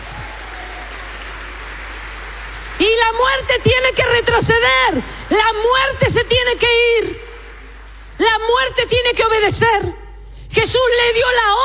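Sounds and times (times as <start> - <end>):
crowd applauding: 0.0 - 6.0, 6.7 - 8.2
speech: 3.1 - 7.2, 8.2 - 11.6.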